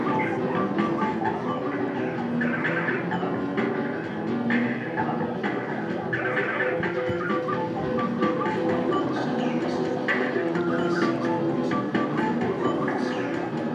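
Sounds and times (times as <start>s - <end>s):
arcade machine tones and beeps: 0.0s - 3.9s, 6.0s - 9.7s, 10.3s - 13.4s
people chattering in a busy arcade: 0.0s - 13.7s.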